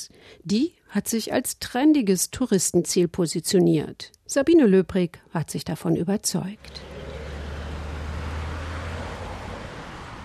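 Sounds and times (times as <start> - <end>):
speech: 0.0 - 6.9
heavy traffic roar of cars, buses and trucks in a jam along the Kura River in Tbilisi: 6.6 - 10.2.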